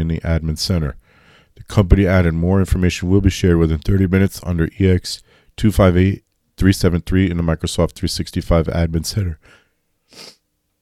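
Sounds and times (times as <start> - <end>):
speech: 0.1 - 10.4
person sneezing: 10.1 - 10.4.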